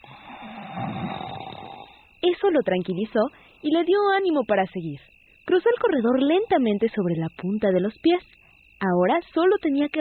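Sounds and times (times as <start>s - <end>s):
man snoring while sleeping deeply: 0.0s - 2.0s
speech: 2.4s - 9.9s.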